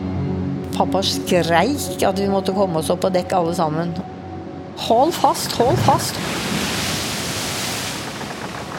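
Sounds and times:
speech: 0:00.8 - 0:04.2, 0:04.8 - 0:06.7
ocean waves crashing: 0:05.3 - 0:08.7.

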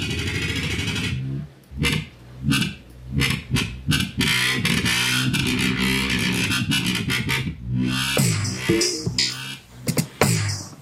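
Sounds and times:
gritty distorted electronic tone with pitch-shift effect adjusted on a phone: 0:00.0 - 0:10.7.

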